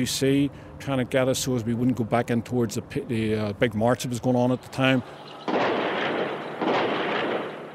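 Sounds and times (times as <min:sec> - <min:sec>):
speech: 0:00.0 - 0:05.6
loud gunshots with long rumbling echo: 0:05.4 - 0:07.7.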